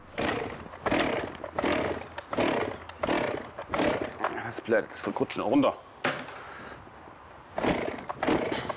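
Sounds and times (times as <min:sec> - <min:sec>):
small two-stroke chainsaw engine being pull-started: 0:00.0 - 0:04.6, 0:07.6 - 0:08.7
speech: 0:04.7 - 0:05.9.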